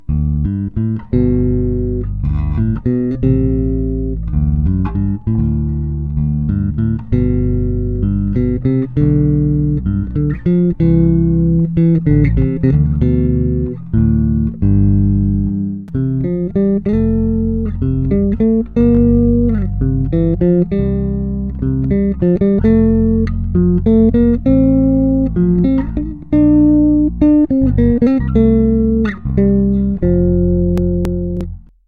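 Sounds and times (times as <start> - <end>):
bass guitar playing a love song: 0.0 - 31.8.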